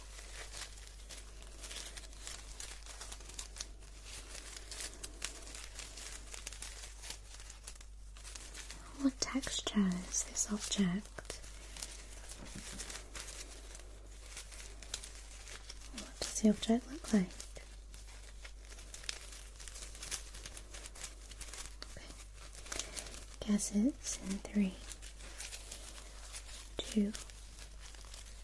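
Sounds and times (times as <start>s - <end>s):
soft crinkling and rustling of something flexible being handled: 0.0s - 28.4s
person whispering: 8.7s - 12.9s, 15.8s - 17.7s, 21.9s - 25.0s, 26.5s - 27.4s
speech: 9.3s - 11.2s, 16.4s - 17.4s, 23.5s - 24.8s, 27.0s - 27.3s.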